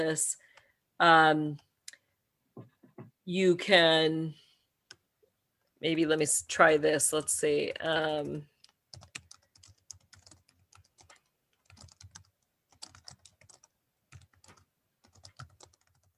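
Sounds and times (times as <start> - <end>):
speech: 0.0 - 0.4, 1.0 - 1.7, 3.3 - 4.4, 5.8 - 8.5
rapid typing on a computer keyboard: 8.6 - 16.1.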